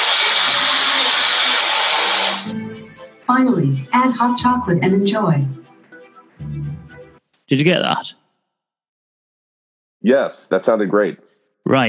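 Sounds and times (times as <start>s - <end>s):
blender running liquefying banana: 0.0s - 2.6s
speech: 3.4s - 5.6s, 7.5s - 8.2s, 10.0s - 11.8s.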